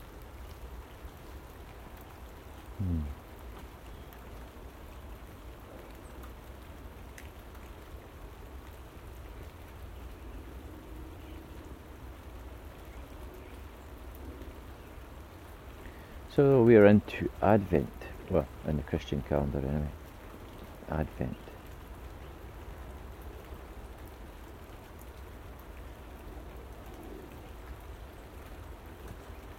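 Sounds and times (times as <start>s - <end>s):
steady rain pattering outdoors: 0.0s - 29.5s
speech: 2.8s - 3.2s, 16.4s - 20.0s, 20.9s - 21.4s.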